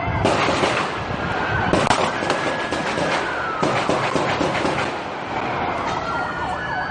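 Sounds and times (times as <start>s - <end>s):
continuous wailing siren: 0.0s - 6.9s
dense noisy outdoor background: 0.0s - 6.9s
gunfire bursts at a protest march against police violence in downtown Dallas: 0.1s - 5.2s.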